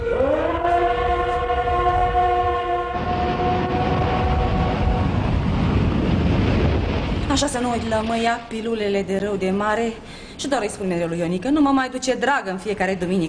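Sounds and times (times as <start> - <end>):
pleasure train horn blaring: 0.0 - 5.5
pleasure train rumbling along: 0.0 - 11.5
speech: 7.4 - 13.2.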